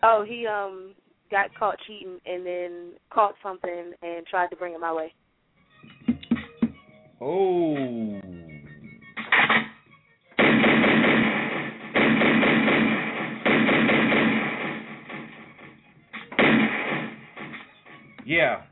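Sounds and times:
speech: 0:00.0 - 0:05.2, 0:07.2 - 0:08.4, 0:18.3 - 0:18.6
rapid gunfire sound effect: 0:10.4 - 0:17.7.

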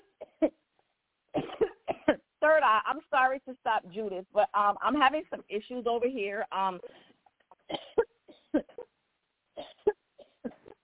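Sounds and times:
person coughing in short harsh bursts: 0:01.4 - 0:02.2, 0:07.6 - 0:08.9, 0:09.6 - 0:10.8
speech: 0:02.7 - 0:07.1.

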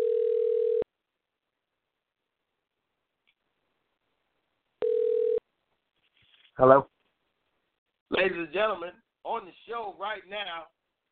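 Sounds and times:
outgoing phone call ringback tone: 0:00.0 - 0:00.8, 0:04.8 - 0:05.4
speech: 0:06.6 - 0:06.9, 0:08.1 - 0:10.8.

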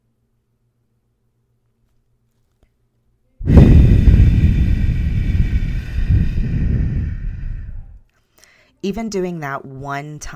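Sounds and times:
deep slow breath as a calming exercise: 0:03.4 - 0:08.7
speech: 0:08.8 - 0:10.3.

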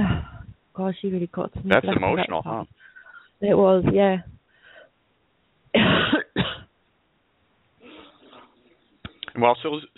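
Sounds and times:
speech: 0:00.8 - 0:04.3, 0:09.4 - 0:09.9
person clearing throat: 0:05.8 - 0:06.7.

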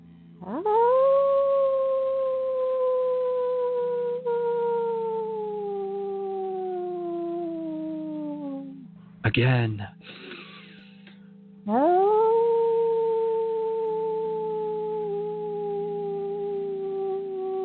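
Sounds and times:
low steady hum: 0:00.0 - 0:17.6
speech: 0:00.4 - 0:00.9, 0:09.3 - 0:10.3
group of people imitating overlapping wolf howls: 0:00.4 - 0:08.9, 0:11.7 - 0:17.6.

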